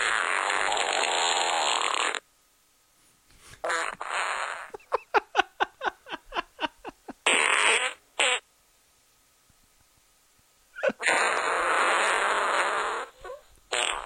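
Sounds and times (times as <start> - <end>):
long loud comedic giant fart: 0.0 - 2.3, 3.6 - 5.0, 7.2 - 8.5, 10.8 - 14.0
laughter: 4.7 - 7.2.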